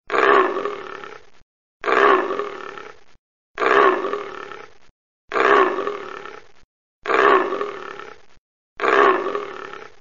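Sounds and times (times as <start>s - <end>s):
leopard giving rough rasping roars: 0.1s - 1.2s, 1.8s - 3.0s, 3.6s - 4.7s, 5.3s - 8.2s, 8.8s - 9.9s.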